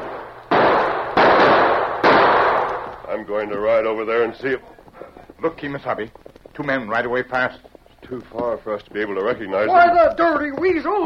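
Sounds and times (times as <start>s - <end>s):
gunshots echoing: 0.0s - 4.4s
speech: 3.2s - 4.8s, 5.4s - 11.0s.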